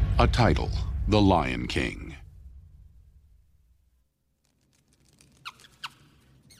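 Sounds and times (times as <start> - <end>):
speech: 0.2 - 2.1
tiny mouse squeaking: 5.0 - 6.5.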